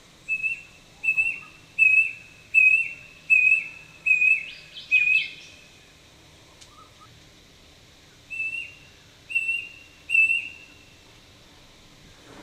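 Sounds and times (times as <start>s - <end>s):
faint background hiss: 0.0s - 12.4s
brush cuckoo whistled song: 0.2s - 5.6s, 6.6s - 7.1s, 8.3s - 10.8s.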